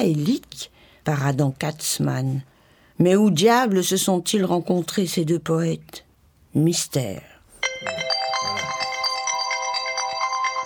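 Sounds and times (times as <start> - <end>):
speech: 0.0 - 8.1
telephone ringtone announcing an incoming call: 7.6 - 10.6.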